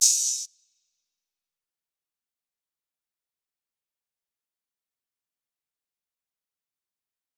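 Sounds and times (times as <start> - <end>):
open hi-hat: 0.0 - 0.5.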